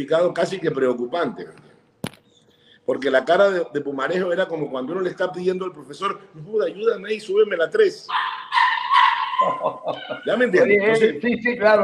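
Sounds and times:
speech: 0:00.0 - 0:01.7, 0:02.9 - 0:08.6, 0:09.4 - 0:11.8
small female dog barking at home: 0:08.1 - 0:09.8
laughter: 0:09.3 - 0:10.7.

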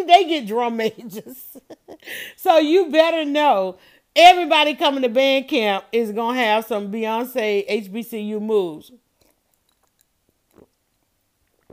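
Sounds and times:
speech: 0:00.0 - 0:09.0
person sipping and slurping lemonade: 0:09.2 - 0:11.7
wet lip and swallowing noises: 0:09.2 - 0:11.7.

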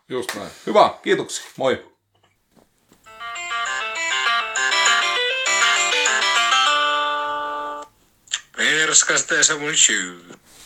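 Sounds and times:
speech: 0:00.1 - 0:01.9, 0:08.6 - 0:10.6
telephone electronic ringtone melody: 0:03.1 - 0:07.9.

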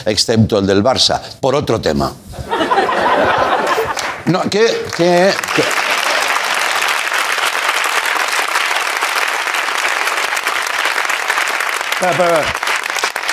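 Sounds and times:
speech: 0:00.0 - 0:03.5, 0:04.2 - 0:05.8, 0:12.0 - 0:12.6
laughter: 0:02.4 - 0:04.8, 0:05.4 - 0:06.6, 0:11.9 - 0:12.6
studio audience applause: 0:04.8 - 0:13.3.

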